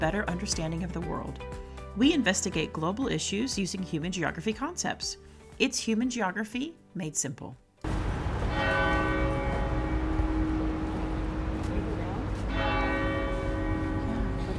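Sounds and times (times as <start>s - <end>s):
speech: 0.0s - 7.6s
steady low rumble: 7.9s - 13.3s
church bells of a main basilica in Rome tolling: 7.9s - 14.5s.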